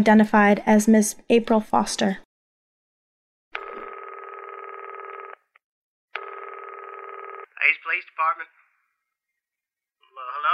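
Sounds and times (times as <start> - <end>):
speech: 0.0 - 2.2
telephone ringback tone through the line: 3.6 - 5.5, 6.2 - 7.5.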